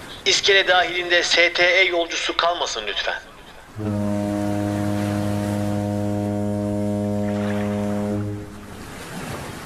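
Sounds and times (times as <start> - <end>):
waves washing: 0.0 - 9.6
wind: 0.0 - 9.6
speech: 0.2 - 4.0
ferry's deep horn blast as the ferry departs the pier: 3.8 - 9.2.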